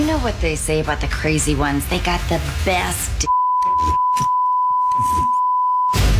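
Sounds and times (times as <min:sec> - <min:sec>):
speech: 0:00.2 - 0:04.3
high-pitched censor bleep: 0:03.3 - 0:06.0.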